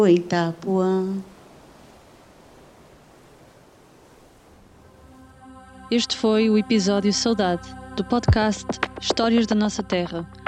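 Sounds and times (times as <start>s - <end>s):
speech: 0.0s - 1.3s, 5.9s - 10.4s
ocean waves washing onto the shore: 1.3s - 5.0s.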